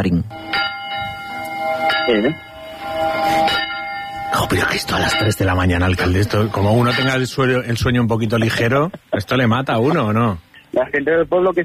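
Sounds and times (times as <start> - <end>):
speech: 0.0 - 0.7, 2.1 - 3.6, 4.4 - 11.6
church bells striking the hour: 0.0 - 7.8.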